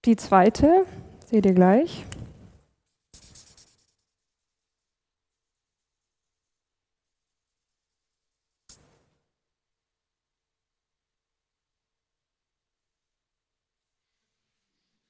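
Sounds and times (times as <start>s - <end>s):
speech: 0.0s - 2.2s
chalk or marker scratching across a board: 2.8s - 9.1s.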